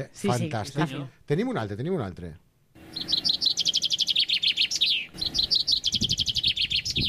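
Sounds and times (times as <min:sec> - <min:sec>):
speech: 0:00.0 - 0:03.1
chaffinch singing: 0:02.8 - 0:07.0.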